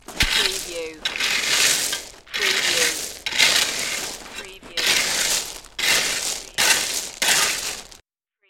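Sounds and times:
raking stone gravel: 0.0s - 8.0s.

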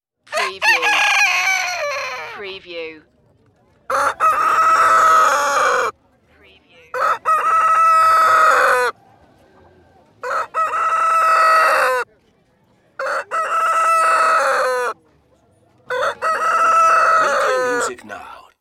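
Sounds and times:
rooster crowing: 0.3s - 2.4s, 3.9s - 5.9s, 7.0s - 9.0s, 9.9s - 12.0s, 13.0s - 15.0s, 15.9s - 17.9s.

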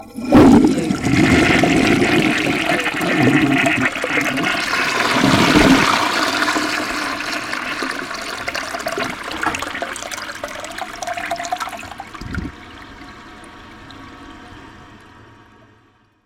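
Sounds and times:
household toilet flushing in a bathroom: 0.0s - 16.0s.

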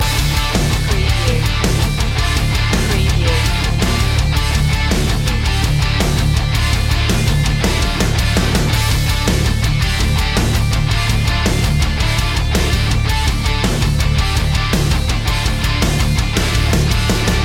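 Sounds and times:
battle ready music loop: 0.0s - 17.4s.

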